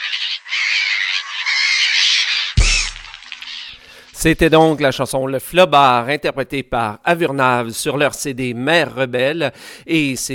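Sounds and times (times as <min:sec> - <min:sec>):
seagulls squawking: 0:00.0 - 0:04.2
brief low thump: 0:02.6 - 0:03.1
speech: 0:04.2 - 0:10.3.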